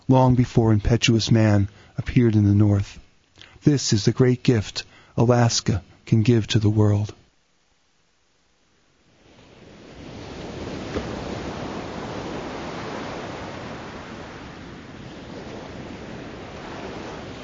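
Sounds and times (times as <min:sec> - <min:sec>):
speech: 0:00.1 - 0:03.0, 0:03.6 - 0:07.2
Arctic Sea waves breaking on a shore: 0:09.1 - 0:17.4
wind noise: 0:09.2 - 0:17.4.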